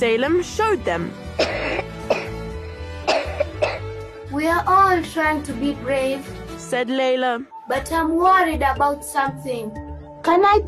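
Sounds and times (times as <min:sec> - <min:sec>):
speech: 0:00.0 - 0:01.6, 0:04.3 - 0:10.6
coughing into the elbow: 0:01.4 - 0:02.4, 0:03.1 - 0:03.8.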